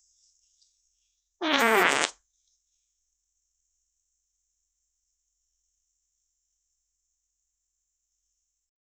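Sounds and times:
squishy wet fart: 0:01.4 - 0:02.1.

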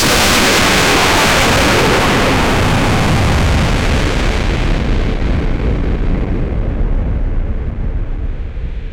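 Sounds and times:
cinematic superhero lightning blast: 0:00.0 - 0:08.7.

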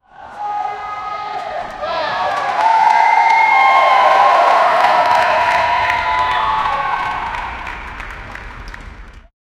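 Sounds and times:
stadium crowd applauding: 0:01.9 - 0:09.3.

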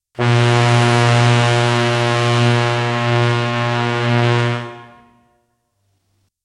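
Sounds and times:
truck air chime horn: 0:00.2 - 0:05.4.

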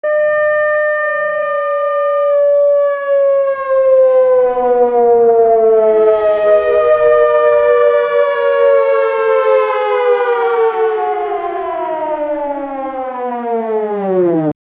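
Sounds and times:
tornado air raid siren alert: 0:00.0 - 0:14.6.

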